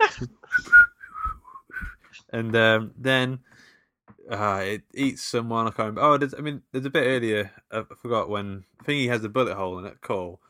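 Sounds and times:
speech: 0:00.1 - 0:00.8, 0:02.3 - 0:03.7, 0:04.3 - 0:10.4
whistled cartoon theme tune: 0:00.5 - 0:02.0.

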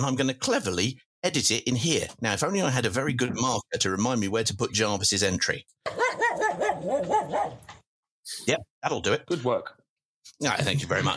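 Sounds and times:
speech: 0:00.0 - 0:09.8, 0:10.4 - 0:11.1
dog barking: 0:05.9 - 0:07.7.

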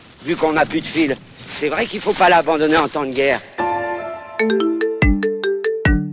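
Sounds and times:
speech: 0:00.2 - 0:03.6, 0:04.4 - 0:04.7
mobile phone ringtone of quick synthetic notes: 0:03.6 - 0:06.1.

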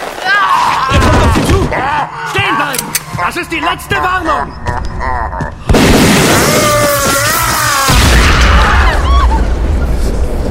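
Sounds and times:
people shouting: 0:00.3 - 0:04.3, 0:06.2 - 0:09.5
speech: 0:03.4 - 0:05.2
loud explosion: 0:05.7 - 0:10.3.

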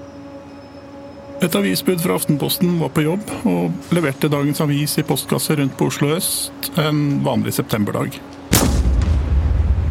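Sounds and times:
speech: 0:01.4 - 0:08.4
loud shotgun blast with deep rumbling echo: 0:08.5 - 0:09.8.

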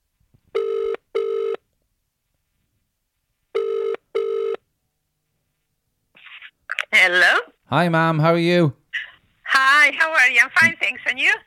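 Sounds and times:
outgoing call ringback tone: 0:00.6 - 0:01.6, 0:03.6 - 0:04.6
speech: 0:07.0 - 0:08.8, 0:09.8 - 0:11.4.

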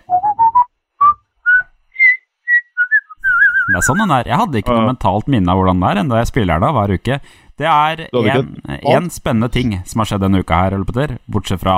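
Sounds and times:
person whistling a short bright tune: 0:00.0 - 0:03.8
speech: 0:03.8 - 0:11.7.

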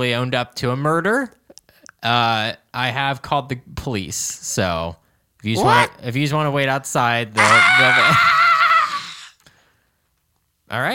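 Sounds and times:
speech: 0:00.0 - 0:01.4, 0:02.0 - 0:08.4, 0:10.7 - 0:10.9
woman screaming: 0:05.6 - 0:06.0, 0:07.4 - 0:09.3.

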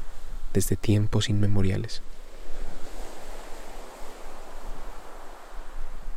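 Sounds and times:
speech: 0:00.5 - 0:02.2
ocean surf washing against the shore: 0:01.9 - 0:06.1.

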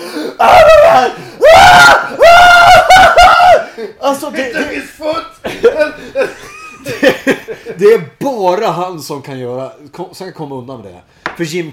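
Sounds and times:
speech: 0:00.4 - 0:02.3, 0:04.0 - 0:05.2, 0:07.8 - 0:11.7
man imitating the frantic screaming of a film character in a phone booth: 0:00.4 - 0:03.7
laughter: 0:03.6 - 0:08.0.

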